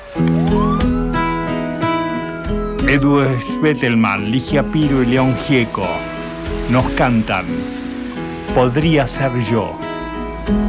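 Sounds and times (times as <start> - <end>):
harsh siren wailing: 0.0 - 6.3
speech: 2.9 - 6.1, 6.7 - 7.8, 8.5 - 9.8, 10.4 - 10.6.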